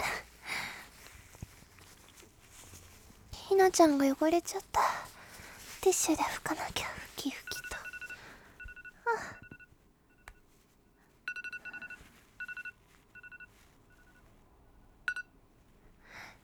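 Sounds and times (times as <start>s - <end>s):
rustling and handling noises: 0.0s - 14.5s
speech: 3.5s - 4.9s, 5.8s - 7.4s
smartphone ringing with rapid electronic beeps: 7.4s - 10.4s, 11.3s - 14.2s, 15.1s - 15.3s.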